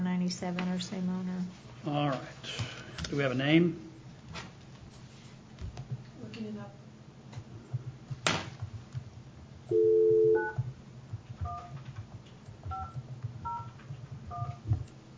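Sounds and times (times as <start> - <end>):
low hum: 0.0 - 15.1
speech: 0.3 - 3.9
telephone keypad dialing tones: 9.7 - 10.6.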